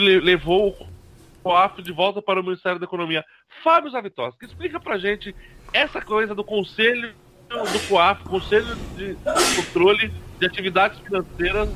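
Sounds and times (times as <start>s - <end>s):
speech: 0.0s - 11.7s
person sneezing: 7.5s - 8.0s, 8.6s - 9.8s.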